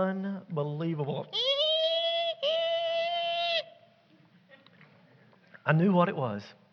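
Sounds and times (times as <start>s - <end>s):
speech: 0.0s - 1.6s, 5.6s - 6.6s
newborn piglets squealing: 1.3s - 3.8s.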